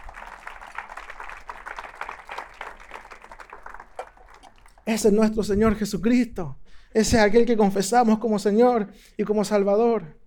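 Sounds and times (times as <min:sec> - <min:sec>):
audience at a church service applauding: 0:00.0 - 0:04.9
speech: 0:04.9 - 0:10.2.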